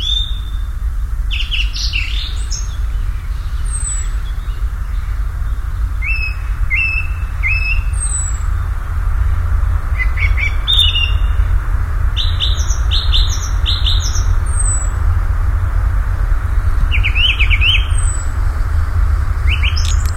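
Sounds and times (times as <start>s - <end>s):
common nightingale song: 0.0s - 20.1s
continuous low droning noise: 0.0s - 20.1s.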